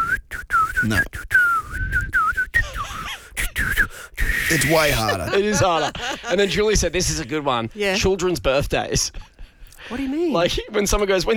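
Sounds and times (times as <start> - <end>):
person whistling a short wavering tune: 0.0 - 5.2
speech: 0.8 - 1.4, 4.5 - 9.3, 9.9 - 11.3
laughter: 4.5 - 7.4.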